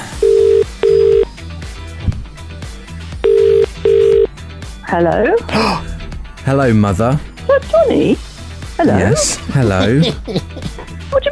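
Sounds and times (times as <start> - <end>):
phone ringing tone heard down the line: 0.1 - 1.3, 3.2 - 4.3
speech: 4.9 - 10.6
laughter: 8.8 - 11.0.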